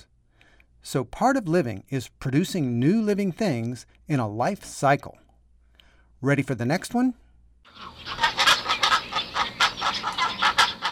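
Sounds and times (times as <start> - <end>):
speech: 0.8 - 5.2, 6.2 - 8.3
baby pelicans calling: 7.7 - 10.9.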